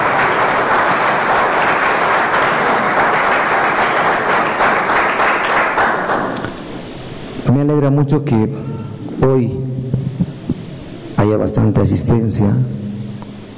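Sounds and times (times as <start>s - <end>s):
large crowd applauding loudly: 0.0s - 6.5s
speech: 7.6s - 9.9s, 11.2s - 12.8s.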